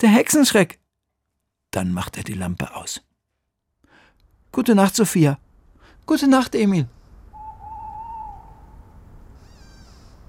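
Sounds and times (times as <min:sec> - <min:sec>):
speech: 0:00.0 - 0:00.8, 0:01.7 - 0:03.1, 0:04.5 - 0:05.4, 0:06.1 - 0:07.0
tawny owl hooting outside tents at night: 0:07.3 - 0:10.2
thin high wavering call: 0:07.3 - 0:10.2.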